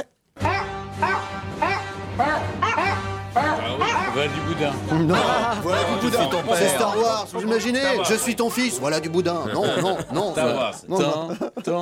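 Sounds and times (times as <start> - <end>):
sampled pitched dog barks forming a melody: 0.4 - 4.6
laughter: 2.2 - 11.8
speech: 4.2 - 11.8.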